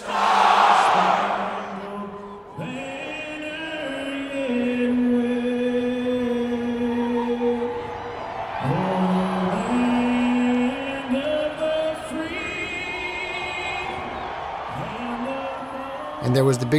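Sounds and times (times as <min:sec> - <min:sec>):
large crowd roaring: 0:00.0 - 0:02.8, 0:06.4 - 0:16.7
many voices chanting long notes together: 0:00.0 - 0:16.4
speech: 0:16.4 - 0:16.7.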